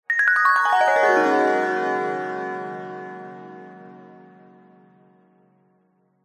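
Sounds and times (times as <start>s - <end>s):
bright warm descending magic glissando twinkle: 0.1s - 4.2s.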